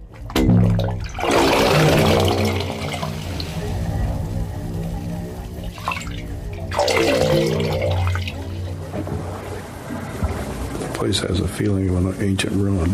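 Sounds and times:
tidal water surging and gurgling through pipes: 0.3s - 11.1s
hollow resonant wave organ pipe tones at the ocean edge: 1.4s - 10.6s
speech: 11.1s - 12.9s.

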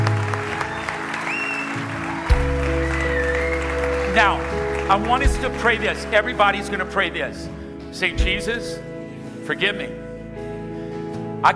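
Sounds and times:
large crowd clapping at a church service: 0.0s - 7.1s
whistles: 0.6s - 4.0s
speech: 4.2s - 8.9s, 9.5s - 10.0s.

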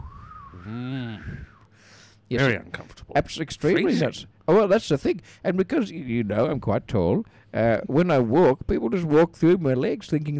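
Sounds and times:
short harsh throaty vocal sound: 0.0s - 1.6s
person whistling imitating a breeze: 0.0s - 1.7s
speech: 0.6s - 1.5s, 2.3s - 10.3s.

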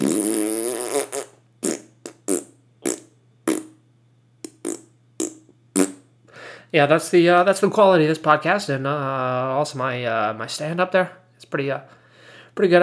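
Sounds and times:
fart: 0.0s - 3.8s, 4.4s - 6.1s
faint steady hum: 0.0s - 12.8s
speech: 6.7s - 12.0s, 12.6s - 12.8s.

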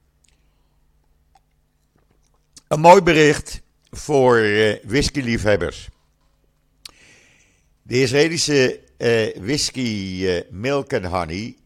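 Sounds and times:
person sipping water with wet mouth clicks and a faint slurp: 1.1s - 2.7s
speech: 2.7s - 6.0s, 7.9s - 11.6s.

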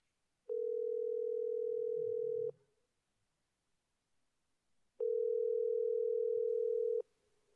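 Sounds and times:
telephone ringback tones: 0.5s - 2.5s, 5.0s - 7.0s.

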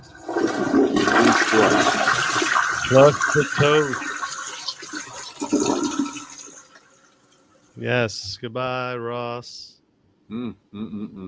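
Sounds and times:
toilet flushing: 0.0s - 6.8s
speech: 2.9s - 4.1s, 7.8s - 9.7s, 10.3s - 11.2s.

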